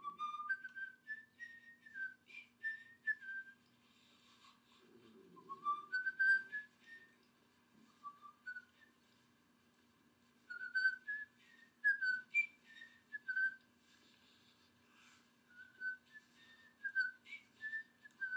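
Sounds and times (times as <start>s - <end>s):
person whistling a wandering melody: 0.0s - 3.6s, 5.3s - 7.2s, 8.0s - 9.0s, 10.5s - 13.6s, 15.5s - 18.3s
faint steady hum: 0.0s - 18.3s.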